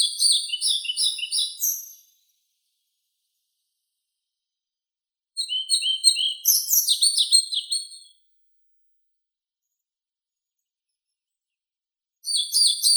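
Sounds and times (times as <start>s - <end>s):
European pied flycatcher song, Ficedula hypoleuca: 0.0s - 2.3s, 5.4s - 8.0s, 12.2s - 12.9s.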